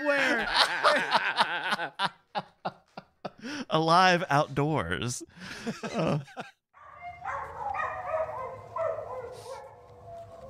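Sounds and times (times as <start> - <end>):
laughter: 0.0 - 3.5, 5.4 - 6.6
speech: 3.8 - 6.4
dog barking and howling: 6.8 - 10.4.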